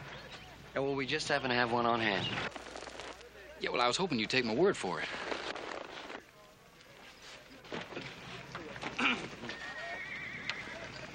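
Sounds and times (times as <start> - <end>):
outdoor bustle: 0.0 - 11.1
voices: 0.0 - 11.1
speech: 0.8 - 2.8, 3.6 - 5.2
horse hooves clopping and shuffling: 1.7 - 3.4, 5.0 - 11.1
horse whinnying: 9.0 - 11.1.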